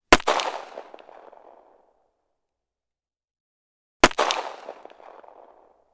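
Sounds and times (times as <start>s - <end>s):
1911 pistol gunshot: 0.1s - 1.8s, 4.0s - 5.8s.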